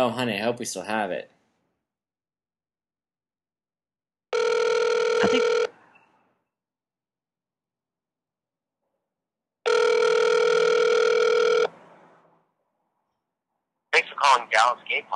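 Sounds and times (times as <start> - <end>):
speech: 0.0 - 1.4, 5.2 - 5.5, 14.6 - 15.1
telephone ringback tone: 4.3 - 5.8, 9.7 - 11.7
voicemail greeting voice: 5.2 - 5.5.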